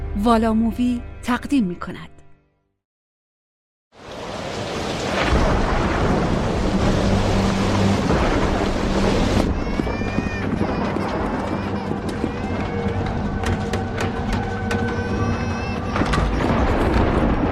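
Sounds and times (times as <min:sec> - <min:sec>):
speech: 0:00.2 - 0:02.1
steady pounding rain: 0:03.9 - 0:17.5
deep rolling thunder: 0:04.7 - 0:13.6, 0:16.0 - 0:17.5.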